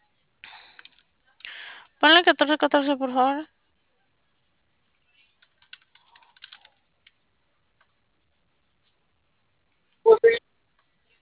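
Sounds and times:
speech: 2.0 - 3.6
typing on a computer keyboard: 5.4 - 7.2.

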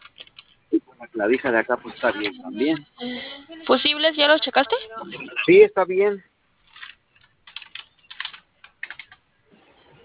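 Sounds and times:
speech: 1.0 - 6.3
keys pressed on the keypad of a control box: 6.8 - 9.2.

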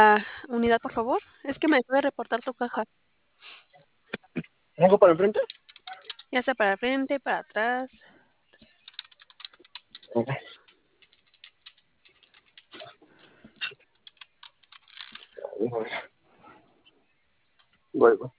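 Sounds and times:
speech: 0.0 - 3.0, 4.4 - 5.6, 6.3 - 8.2, 10.1 - 10.5, 15.6 - 16.1, 18.0 - 18.3
typing on a computer keyboard: 5.5 - 6.3, 8.8 - 12.8.

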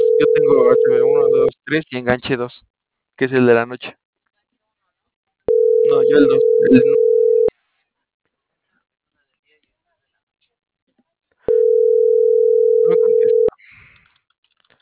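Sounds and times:
electronic telephone call tone before voicemail: 0.0 - 1.5, 5.5 - 7.5, 11.5 - 13.5
speech: 0.2 - 4.0, 5.9 - 7.1.

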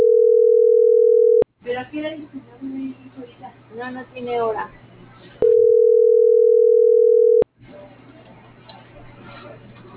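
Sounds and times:
telephone line ringing tone on an unanswered call: 0.0 - 1.4, 5.4 - 7.4
speech: 1.9 - 5.5.

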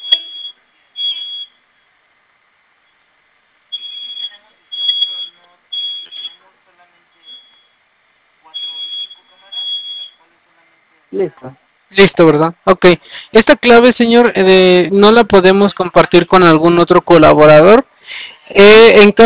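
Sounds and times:
security alarm system beeping before being disarmed: 0.0 - 1.9, 3.7 - 6.4, 7.1 - 7.8, 8.5 - 10.2
speech: 11.2 - 17.9, 18.5 - 19.2.

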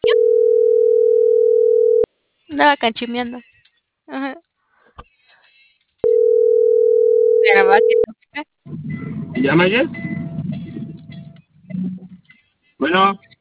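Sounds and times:
telephone line tone after a dropped call: 0.0 - 2.1, 6.0 - 8.0
speech: 2.6 - 4.4, 7.6 - 10.0, 12.8 - 13.3.

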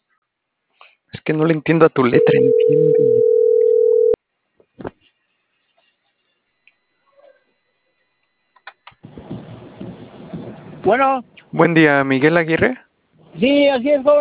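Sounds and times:
speech: 1.3 - 3.3, 10.9 - 12.8, 13.4 - 14.1
telephone line tone while waiting for answer: 2.2 - 4.2.

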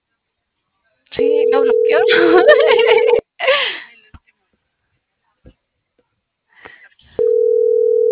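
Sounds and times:
telephone tone on an unanswered call: 1.2 - 3.2, 7.2 - 8.1
speech: 1.6 - 3.2
laughter: 2.1 - 3.8.

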